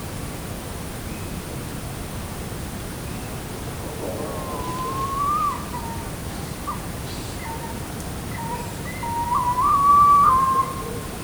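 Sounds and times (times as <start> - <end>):
steady background noise: 0.0 - 11.2
tawny owl hooting at night: 3.6 - 11.1.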